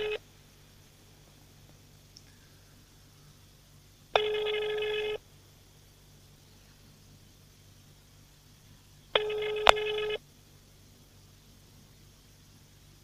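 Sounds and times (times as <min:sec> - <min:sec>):
phone ringback tone of an unanswered call: 0:00.0 - 0:00.2, 0:04.2 - 0:05.2, 0:09.2 - 0:10.2
faint phone line hiss: 0:00.0 - 0:13.0.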